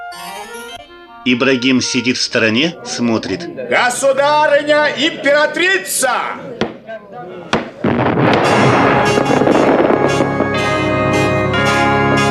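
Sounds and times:
speech: 0:01.2 - 0:06.6
sharp bangs of fireworks launching at an imperial celebration: 0:06.6 - 0:06.8, 0:07.5 - 0:11.7
dense loud continuous crackling roar of fireworks at an imperial celebration: 0:07.6 - 0:11.9.

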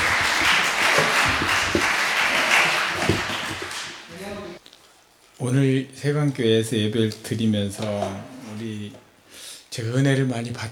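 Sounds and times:
church congregation applauding to welcome a missionary: 0:00.0 - 0:04.1
speech: 0:05.4 - 0:09.0, 0:09.7 - 0:10.7.

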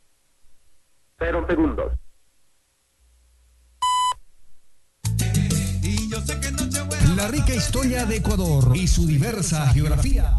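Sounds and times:
speech: 0:01.2 - 0:02.0, 0:07.3 - 0:10.3
electronic beep of a naval radio time signal marking the hour: 0:03.8 - 0:04.2
music: 0:05.0 - 0:10.2.

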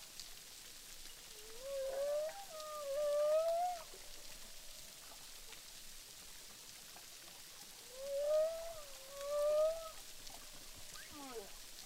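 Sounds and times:
humpback whales singing underwater at Boucan Canot, Réunion Island: 0:01.4 - 0:04.0, 0:07.9 - 0:10.0, 0:10.9 - 0:11.6.

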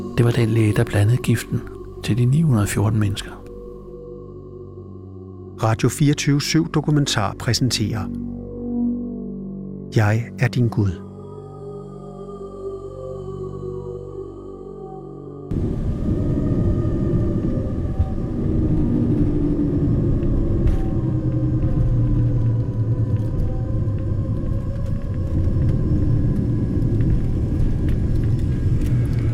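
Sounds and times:
speech: 0:00.2 - 0:03.4, 0:05.6 - 0:08.4, 0:09.9 - 0:11.1
airplane engine roar while landing on the runway at Port Katuna: 0:15.5 - 0:29.3.

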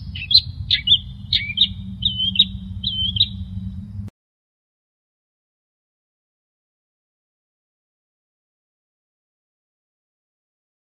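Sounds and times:
long-tailed shrike song: 0:00.0 - 0:04.1
steady low hum: 0:00.0 - 0:04.1.

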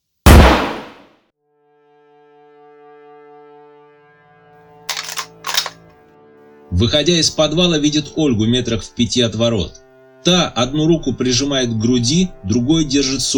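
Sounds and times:
rifle shot: 0:00.3 - 0:01.0, 0:04.9 - 0:05.8
speech: 0:06.7 - 0:13.3.

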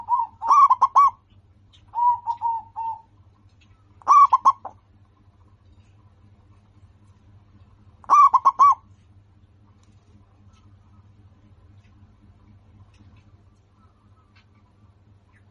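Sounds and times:
local-strain zebra dove cooing: 0:00.0 - 0:01.2, 0:01.9 - 0:03.2, 0:04.0 - 0:04.8, 0:08.0 - 0:08.9
local-strain zebra dove singing loud rolling phrases: 0:00.0 - 0:05.6, 0:06.3 - 0:15.4.

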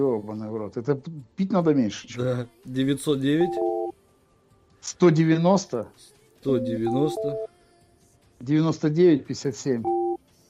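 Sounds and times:
speech: 0:00.0 - 0:03.7, 0:04.8 - 0:07.5, 0:08.4 - 0:10.0
two-pitch telephone keypad tone while dialing a number: 0:03.4 - 0:03.9, 0:06.6 - 0:07.5, 0:09.8 - 0:10.2.

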